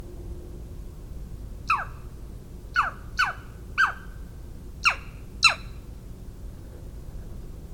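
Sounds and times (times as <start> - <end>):
Northern Saw-whet Owl Aegolius acadicus calling: 1.6 - 2.1, 2.7 - 4.2, 4.8 - 5.8.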